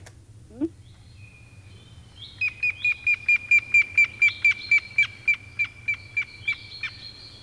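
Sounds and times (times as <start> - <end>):
low hum: 0.0 - 7.4
grey-headed woodpecker whistled call: 2.2 - 7.4.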